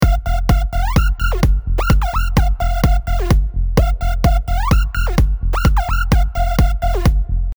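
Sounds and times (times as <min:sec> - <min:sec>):
EDM synthesizer: 0:00.0 - 0:07.5.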